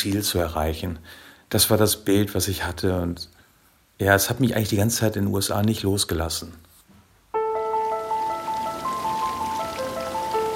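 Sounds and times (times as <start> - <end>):
speech: 0.0 - 3.4, 4.0 - 6.7
bright sustained melodic tones: 7.4 - 10.5
small garden fountain of a bungalow splashing southeast of Los Angeles: 8.0 - 10.5.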